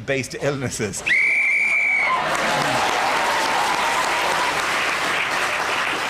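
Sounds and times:
speech: 0.1s - 1.3s
whistle blown to end the round: 1.1s - 2.1s
loud sustained audience applause: 1.5s - 6.0s.

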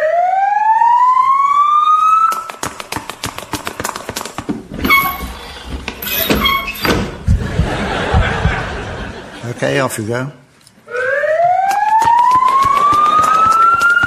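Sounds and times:
ambulance siren wailing: 0.0s - 2.3s, 10.9s - 14.0s
clattering noises: 2.9s - 8.8s
laughter: 7.2s - 9.8s
speech: 9.6s - 10.4s.

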